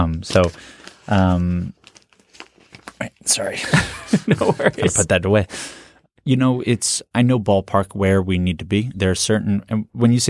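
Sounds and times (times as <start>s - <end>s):
speech: 0.0s - 1.8s, 3.0s - 10.2s
loose note paper sheets from a clipboard rustling and crinkling: 0.3s - 3.2s
laughter: 3.6s - 5.5s.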